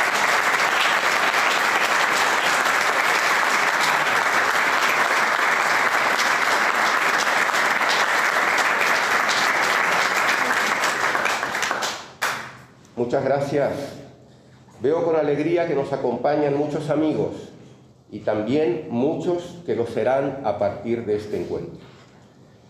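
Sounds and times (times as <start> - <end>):
large audience applauding: 0.0 - 12.5
speech: 13.1 - 14.0, 14.8 - 17.5, 18.1 - 21.9.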